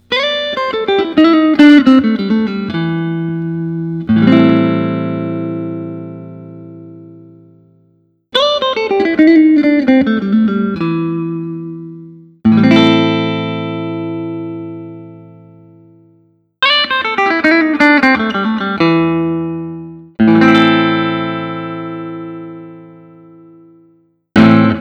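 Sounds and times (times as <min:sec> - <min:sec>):
aged 2008 semi-hollow guitar: 0:00.0 - 0:24.8.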